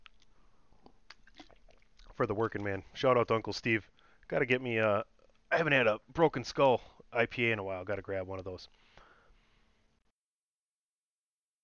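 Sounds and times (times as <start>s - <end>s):
person sipping water: 0.0s - 2.2s
swallowing: 0.0s - 2.2s
speech: 2.2s - 8.9s.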